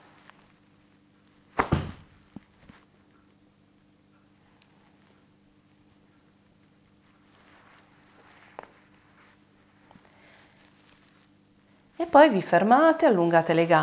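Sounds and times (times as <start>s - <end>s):
bare foot dropping onto the floor: 1.6s - 2.8s
speech: 12.0s - 13.8s.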